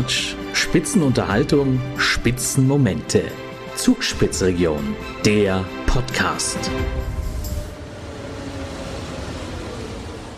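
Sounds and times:
speech: 0:00.0 - 0:07.2
train pulling into station with low rumble and rattling wheels: 0:04.0 - 0:10.3
brief bright train screech: 0:07.1 - 0:09.6.

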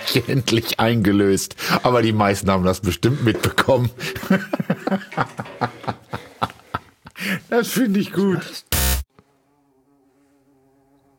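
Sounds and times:
speech: 0:00.1 - 0:05.5, 0:07.5 - 0:08.7
laughter: 0:03.1 - 0:07.4
bumblebee buzzing in a studio: 0:08.7 - 0:11.1.

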